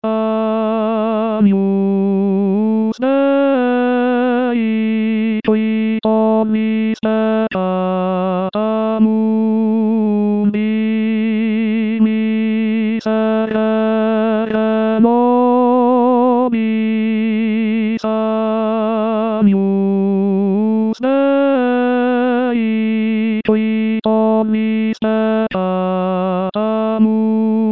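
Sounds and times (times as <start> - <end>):
chorale: 0.0 - 27.7.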